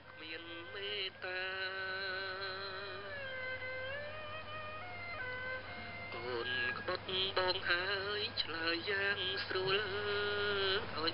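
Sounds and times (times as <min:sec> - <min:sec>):
man singing Cambodian music over shortwave radio: 0:00.0 - 0:03.4, 0:06.1 - 0:11.1
bowed tro fiddle over shortwave radio: 0:00.0 - 0:11.1.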